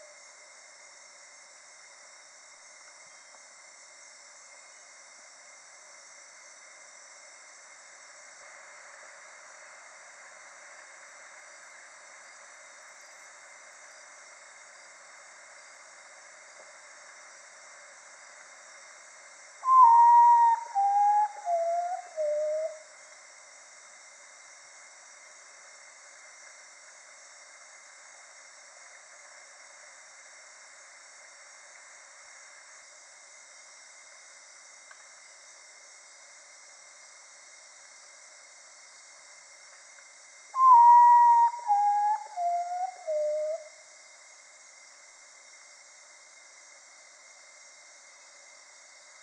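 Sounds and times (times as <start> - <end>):
Common Potoo Nyctibius griseus calling: 19.7 - 22.8, 40.6 - 43.6.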